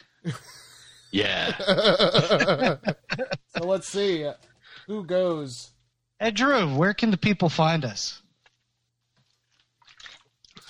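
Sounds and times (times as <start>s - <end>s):
speech: 0.2s - 0.5s, 1.1s - 8.2s
laughter: 0.3s - 3.9s
person gulping water: 8.4s - 10.6s.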